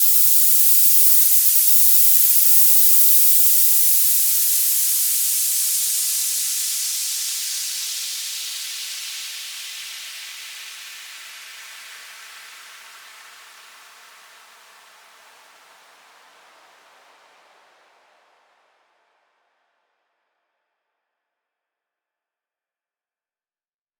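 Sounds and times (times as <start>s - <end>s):
white noise effect: 0.0s - 13.6s.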